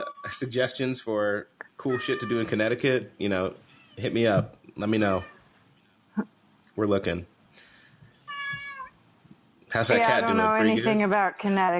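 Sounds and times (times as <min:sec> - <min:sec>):
speech: 0:00.3 - 0:05.4, 0:06.2 - 0:07.7, 0:09.7 - 0:11.7
cat meowing: 0:01.8 - 0:02.6, 0:05.0 - 0:05.4, 0:08.3 - 0:09.0.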